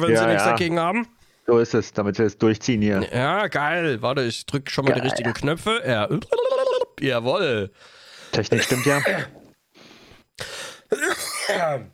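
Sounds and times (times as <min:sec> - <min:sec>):
speech: 0:00.0 - 0:09.4, 0:10.4 - 0:11.9
person coughing and clearing throat: 0:08.6 - 0:09.4, 0:10.9 - 0:11.9.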